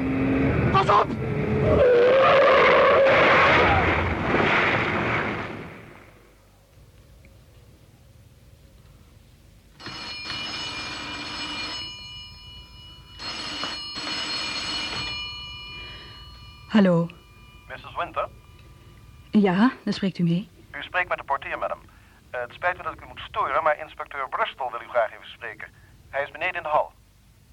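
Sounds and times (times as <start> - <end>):
heavy vehicle roar: 0.0 - 5.6
car tires skidding: 0.4 - 5.6
speech: 0.8 - 1.9, 16.8 - 17.1, 19.4 - 27.0
telephone bell ringing: 9.8 - 19.9.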